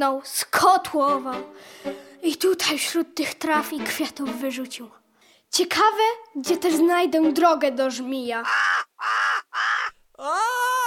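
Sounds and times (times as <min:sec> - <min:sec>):
speech: 0:00.0 - 0:09.2, 0:10.2 - 0:10.8
crow cawing: 0:08.4 - 0:10.0.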